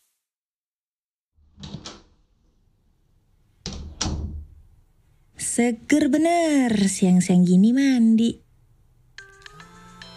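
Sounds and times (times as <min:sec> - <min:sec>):
speech: 0:05.6 - 0:08.4
phone ringtone for an incoming call with chiming melodic notes: 0:09.2 - 0:10.1.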